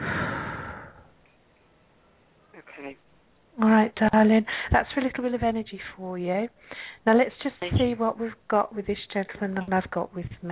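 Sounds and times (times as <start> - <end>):
person blowing out a forceful breath during a guided breathing exercise: 0.0 - 1.1
speech: 2.8 - 3.1, 3.9 - 10.5.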